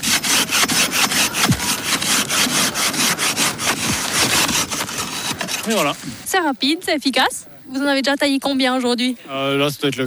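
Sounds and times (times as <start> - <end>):
hand saw rasping through a block of ice: 0.0 - 6.3
low thumps: 0.6 - 6.3
speech: 5.7 - 10.0.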